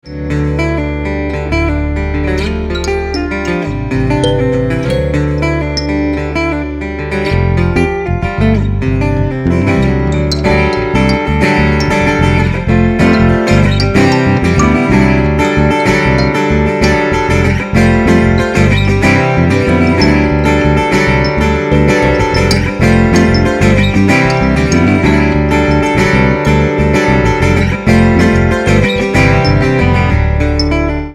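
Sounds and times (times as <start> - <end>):
bass guitar: 0.0 - 31.1
kalimba: 2.8 - 6.4, 10.1 - 26.6.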